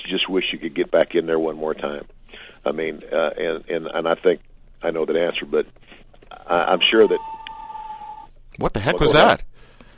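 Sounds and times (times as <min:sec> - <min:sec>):
speech: 0:00.3 - 0:07.3, 0:08.6 - 0:09.5
mobile phone ringtone playing a movie theme: 0:07.1 - 0:08.3.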